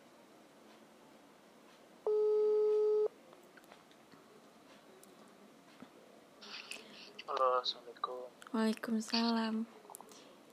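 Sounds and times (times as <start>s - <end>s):
quiet hiss: 0.0s - 10.5s
telephone ringing tone of an outgoing phone call: 2.1s - 3.1s
speech: 7.6s - 9.8s.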